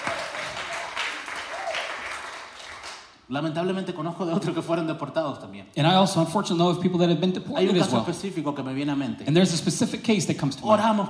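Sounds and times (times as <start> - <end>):
audience applause: 0.0 - 3.1
speech: 3.3 - 11.0.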